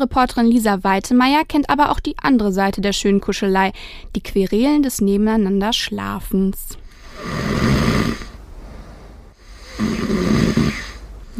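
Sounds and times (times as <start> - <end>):
speech: 0.0 - 8.2
person snoring loudly in bed: 6.9 - 11.3.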